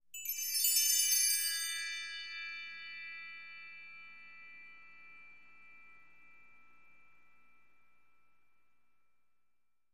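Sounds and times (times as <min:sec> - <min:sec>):
bell tree chimes: 0:00.2 - 0:08.0.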